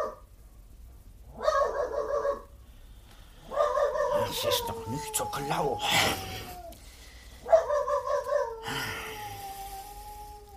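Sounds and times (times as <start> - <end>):
dog barking at night: 0.0 - 0.2, 1.3 - 2.5, 3.5 - 4.6, 7.4 - 8.6
faint steady hum: 0.0 - 10.5
speech: 4.4 - 6.4.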